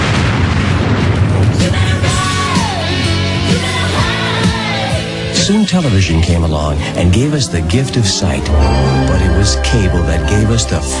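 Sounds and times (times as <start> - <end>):
explosion sound effect: 0.0 - 2.8
crackling bursts: 0.0 - 10.9
speech: 5.6 - 10.9.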